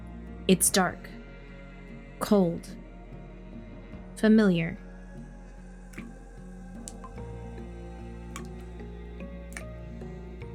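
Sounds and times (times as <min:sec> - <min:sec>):
speech: 0:00.5 - 0:01.2, 0:02.2 - 0:02.8, 0:04.2 - 0:04.8
sparse irregular water drips plinking: 0:06.0 - 0:06.2, 0:06.8 - 0:07.6, 0:08.3 - 0:08.8, 0:09.4 - 0:10.2.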